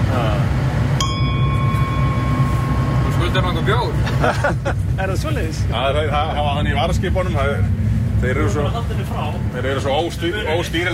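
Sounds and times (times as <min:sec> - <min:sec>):
low rumble: 0:00.0 - 0:10.9
ship's bell struck once: 0:01.0 - 0:04.0
speech: 0:03.4 - 0:10.9
laughter: 0:03.9 - 0:05.1.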